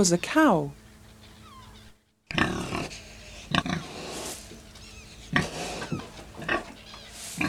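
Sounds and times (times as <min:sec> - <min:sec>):
pig grunting and oinking: 0:02.3 - 0:07.4.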